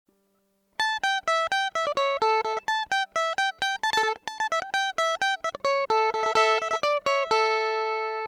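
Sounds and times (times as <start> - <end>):
electric mandolin: 0.8 - 8.2.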